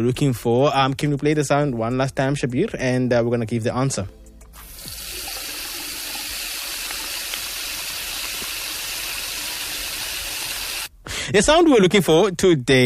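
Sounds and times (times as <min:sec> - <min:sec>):
speech: 0:00.0 - 0:04.2, 0:11.3 - 0:12.8
water running from a tap into a sink: 0:04.6 - 0:10.9.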